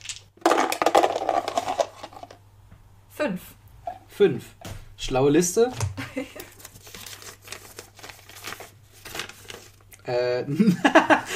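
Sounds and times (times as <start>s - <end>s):
dice rattling and tumbling across a hard tabletop: 0.0s - 2.4s
speech: 3.2s - 6.4s, 10.1s - 11.3s.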